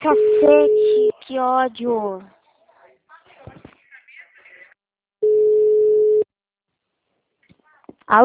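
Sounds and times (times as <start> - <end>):
phone tone beep after a dropped call: 0.0 - 1.1, 5.2 - 6.2
speech: 0.0 - 2.4.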